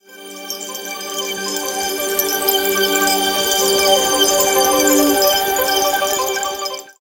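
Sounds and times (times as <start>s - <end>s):
count up sparkle: 1.5s - 6.7s.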